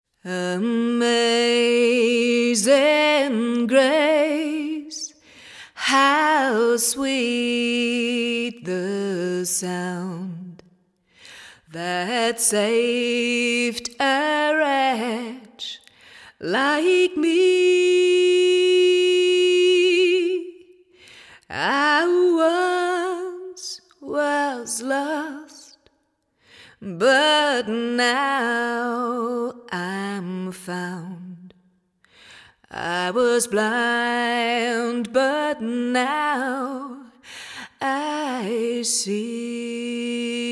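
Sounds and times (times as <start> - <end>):
person singing a cappella: 0.1 - 10.8, 11.6 - 25.9, 26.7 - 31.6, 32.5 - 40.4.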